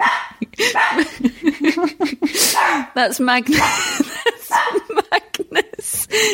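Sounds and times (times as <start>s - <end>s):
dog barking: 0.0s - 1.3s, 2.5s - 3.0s, 4.4s - 5.0s
laughter: 0.4s - 2.9s, 3.5s - 6.3s
speech: 3.0s - 4.0s, 6.2s - 6.3s.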